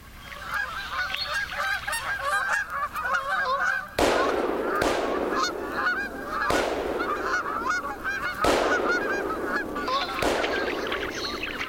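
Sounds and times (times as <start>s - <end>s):
large flock of Canada geese gabbling and honking: 0.0s - 11.6s.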